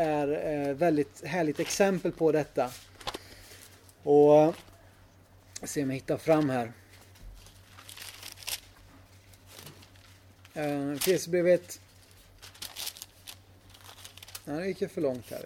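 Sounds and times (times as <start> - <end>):
speech: 0.0 - 2.9, 4.0 - 4.7, 5.6 - 6.8, 10.6 - 11.8, 14.4 - 15.4
pages of a thin Bible being leafed: 1.5 - 3.8, 6.3 - 11.3, 11.9 - 15.4.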